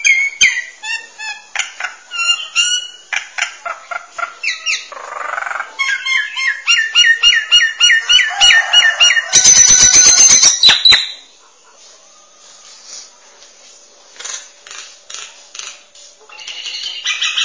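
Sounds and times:
starling song with whistled chirps and buzzy rattle: 0.0 - 13.8.

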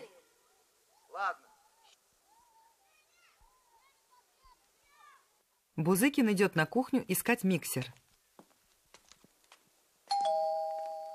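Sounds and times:
speech: 1.2 - 1.5, 5.8 - 8.0
doorbell chime at a front door: 10.1 - 11.1.

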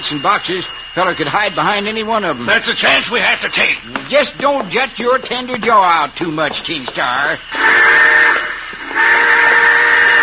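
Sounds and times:
speech: 0.1 - 8.4
loud steam train whistle: 7.4 - 10.2.

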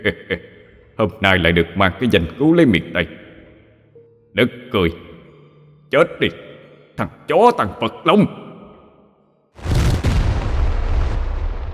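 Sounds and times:
speech: 0.0 - 3.2, 4.4 - 5.1, 5.9 - 8.4
explosion: 9.6 - 11.7.

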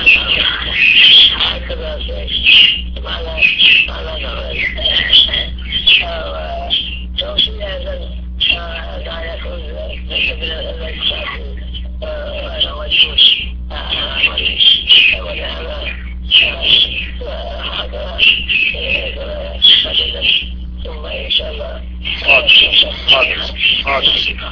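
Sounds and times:
sparrows chirping loudly: 0.0 - 11.3, 12.0 - 24.4
faint voices: 0.0 - 24.4
steady low electrical hum: 0.0 - 24.4.

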